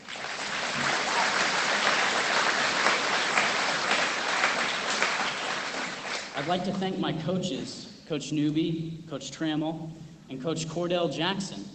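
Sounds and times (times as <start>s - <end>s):
audience applause: 0.0s - 6.8s
speech: 6.4s - 11.7s.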